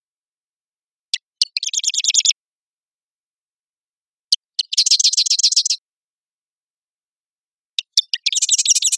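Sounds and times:
male marsh wren Cistothorus palustris singing clicks and mechanical rattle, Redmond, Washington: 1.1 - 2.4, 4.3 - 5.8, 7.7 - 8.9.

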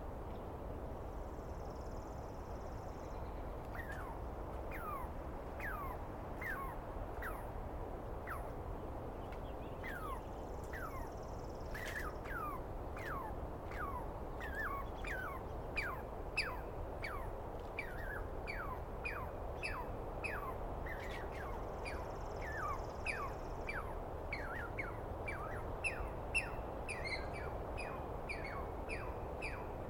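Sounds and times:
constant low rumble: 0.0 - 29.8
Douglas pine squirrel calling in falling chirps: 9.8 - 29.6.

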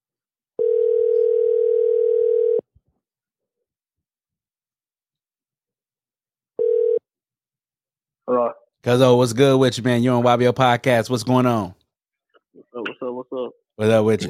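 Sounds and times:
phone ringback tone as a call rings out: 0.6 - 2.6, 6.6 - 7.0
speech: 8.3 - 11.8, 13.4 - 14.2.

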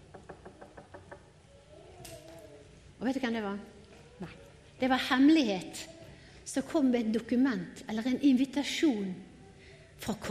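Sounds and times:
knocking on a door: 0.0 - 1.3
speech: 3.0 - 5.9, 6.5 - 9.3, 10.0 - 10.2.

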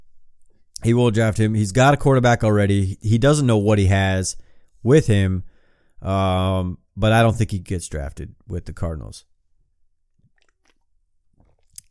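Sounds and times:
speech: 0.8 - 9.3
person sipping and swallowing beer: 10.1 - 11.8.

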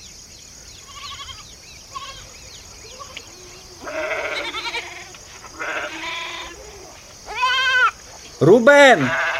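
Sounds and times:
flock of sheep bleating: 0.9 - 2.3, 3.8 - 8.0, 8.8 - 9.3
speech: 8.4 - 9.2.

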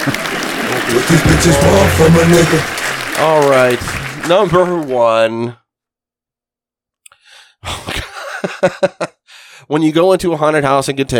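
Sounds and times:
group applause: 0.0 - 5.5
speech: 0.9 - 5.6, 8.4 - 9.0, 9.7 - 11.1
hearty laughter: 7.8 - 9.2.

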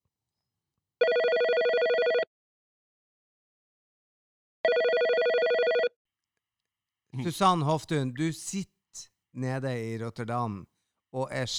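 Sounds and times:
telephone ringing while a call is being placed: 1.0 - 2.3, 4.6 - 5.9
speech: 7.2 - 11.5.

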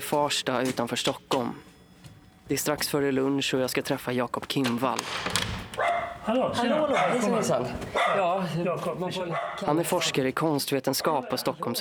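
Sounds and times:
speech: 0.1 - 1.7, 2.5 - 11.7
dog whining: 5.8 - 8.3
dog barking: 5.8 - 8.5, 9.2 - 10.2, 11.0 - 11.4.

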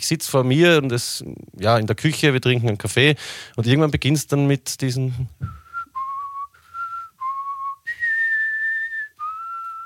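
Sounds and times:
speech: 0.0 - 5.6
person whistling a film soundtrack melody: 5.4 - 9.8.

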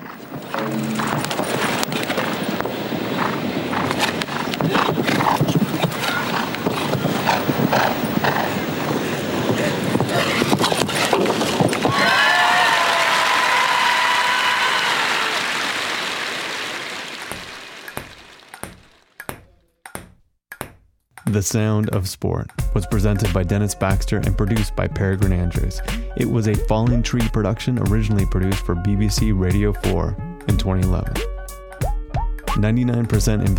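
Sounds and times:
horse hooves clip-clopping at an equestrian jumping event: 0.0 - 12.2
dense loud crowd roar at an equestrian jumping event: 11.8 - 18.4
speech: 21.4 - 31.3, 32.6 - 33.5.

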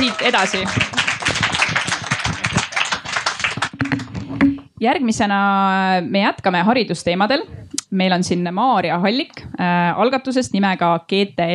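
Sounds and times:
audience applause: 0.0 - 4.5
speech: 0.1 - 1.1, 4.8 - 11.5.

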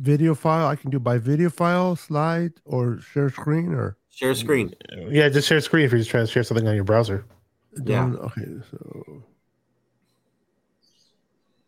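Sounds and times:
speech: 0.0 - 9.3
low steady background hum: 0.0 - 9.5
faint birds chirping: 8.6 - 11.6.

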